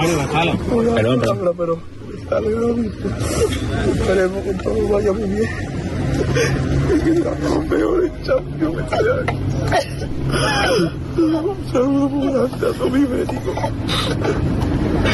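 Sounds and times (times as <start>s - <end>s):
speech: 0.1s - 15.1s
young man sobbing inconsolably: 2.4s - 4.3s, 5.2s - 15.1s.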